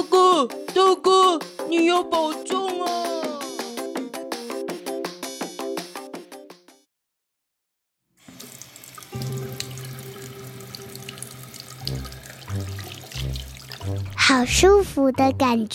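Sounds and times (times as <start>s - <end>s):
speech: 0.1s - 3.3s, 14.3s - 15.7s
water running steadily like a shower spray: 8.2s - 14.5s
bright piano-like melody: 9.1s - 14.6s.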